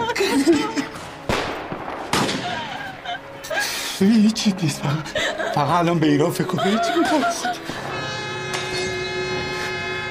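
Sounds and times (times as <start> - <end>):
laughter: 0.0 - 1.0, 2.4 - 8.0
speech: 4.0 - 7.7
sustained horn-like train tones: 7.8 - 10.0.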